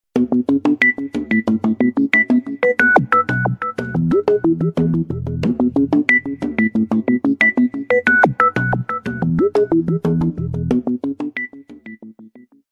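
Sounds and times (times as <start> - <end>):
low beat phone ringtone: 0.3 - 10.3.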